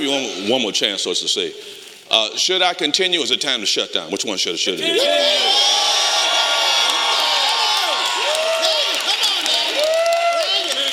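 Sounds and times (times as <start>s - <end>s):
speech: 0.0s - 6.4s
higher yells rising above the crowd: 4.8s - 10.9s
large crowd shouting and cheering: 4.8s - 10.9s.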